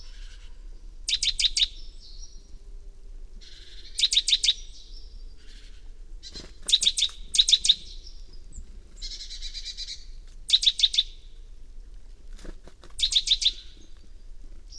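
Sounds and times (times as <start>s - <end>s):
great tit Parus major chinking calls: 1.1s - 2.4s, 3.4s - 11.2s, 13.0s - 14.0s.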